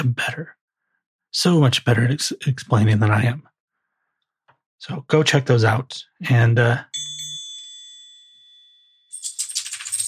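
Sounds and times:
speech: 0.0 - 0.6, 1.3 - 3.5, 4.8 - 6.9
bright dinner bell ringing: 6.9 - 10.0
rustling jingling clatter: 9.1 - 10.0.

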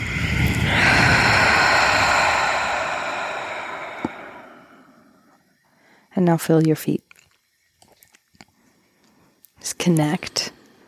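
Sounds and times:
deep exhale during a guided breathwork exercise: 0.0 - 6.1
speech: 6.2 - 7.0, 9.8 - 10.4.

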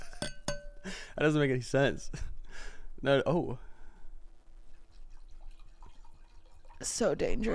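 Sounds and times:
speech: 1.2 - 2.3, 3.0 - 3.7, 6.8 - 7.5
wine pouring from a bottle: 4.7 - 6.9.

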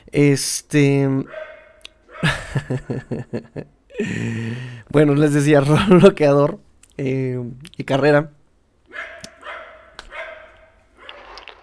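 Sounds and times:
speech: 0.1 - 1.5, 2.2 - 9.1
dog barking: 1.3 - 2.4, 8.9 - 11.2
laughter: 2.2 - 4.5.

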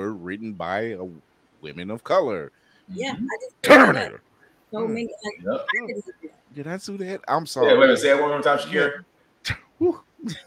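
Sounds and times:
speech: 0.0 - 10.4
short voiced sounds: 3.0 - 4.2, 4.8 - 6.2
person sneezing: 3.6 - 4.2.

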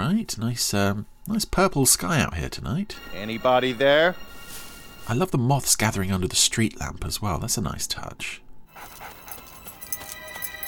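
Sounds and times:
speech: 0.1 - 4.4, 5.1 - 9.2
dog panting: 8.7 - 10.6.

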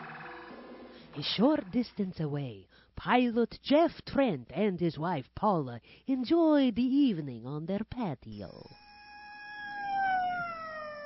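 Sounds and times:
speech: 1.2 - 8.8
emergency vehicle siren passing: 8.8 - 11.0.

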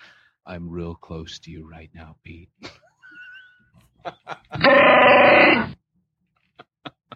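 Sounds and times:
breaths: 0.0 - 0.5
speech: 0.5 - 2.8, 4.0 - 5.8
laughter: 2.6 - 5.0, 6.5 - 7.1
long loud burp: 4.6 - 5.8.

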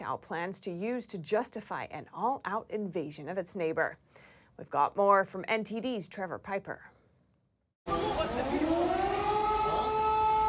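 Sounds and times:
speech: 0.1 - 6.9
air raid siren wailing outdoors: 7.9 - 10.4.

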